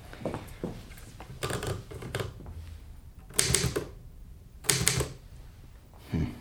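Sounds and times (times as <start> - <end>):
typewriter keys clattering: 1.4 - 2.4, 3.2 - 4.0, 4.6 - 5.2.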